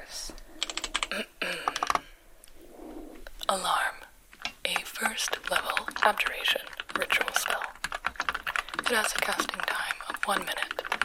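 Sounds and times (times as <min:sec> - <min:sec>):
rapid typing on a computer keyboard at a dictation service: 0:00.6 - 0:02.0, 0:04.4 - 0:11.0.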